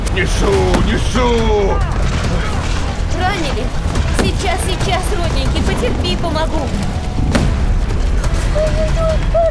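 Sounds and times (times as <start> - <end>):
speech: 0.1 - 2.6, 3.2 - 7.4, 8.5 - 9.4
heavy cannon boom from sailors firing cannons: 0.7 - 3.2, 4.0 - 5.7, 7.3 - 8.5.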